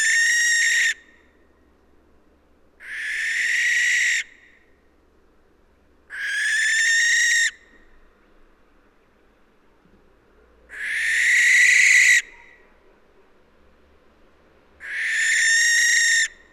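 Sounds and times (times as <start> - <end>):
Western barn owl Tyto alba rasping hissing screeches: 0.0 - 1.0, 2.8 - 4.4, 6.1 - 7.6, 10.7 - 12.6, 14.8 - 16.4.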